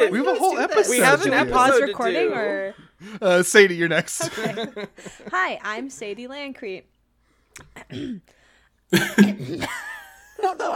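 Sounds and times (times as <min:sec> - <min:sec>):
laughter: 0:00.0 - 0:02.1, 0:03.9 - 0:05.6, 0:09.0 - 0:10.7
speech: 0:00.0 - 0:06.9, 0:07.6 - 0:10.7
person clearing throat: 0:07.7 - 0:08.3, 0:08.9 - 0:09.8.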